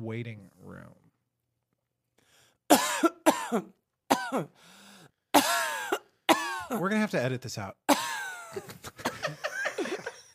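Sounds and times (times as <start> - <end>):
speech: 0.0 - 1.0, 2.7 - 4.7, 6.7 - 7.8
person coughing into the microphone: 2.7 - 4.6, 5.4 - 6.8, 7.9 - 8.4
laughter: 8.5 - 10.3.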